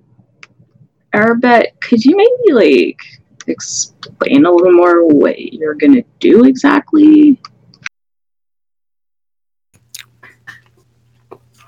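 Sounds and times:
speech: 1.2 - 7.5
chewing and swallowing a sandwich: 9.8 - 10.8, 11.4 - 11.6.

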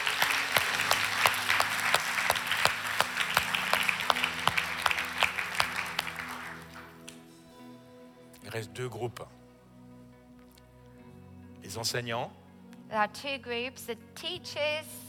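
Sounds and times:
audience clapping: 0.0 - 7.3
speech: 8.6 - 9.4, 11.7 - 15.0.

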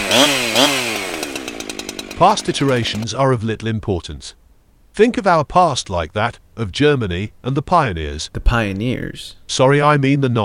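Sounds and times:
chainsaw engine revving: 0.0 - 3.2
speech: 2.2 - 4.4, 5.0 - 10.4.

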